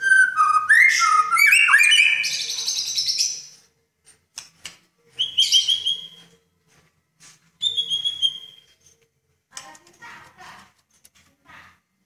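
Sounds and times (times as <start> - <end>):
Oriental magpie-robin song: 0.0 - 3.6, 5.1 - 6.3, 7.6 - 8.8.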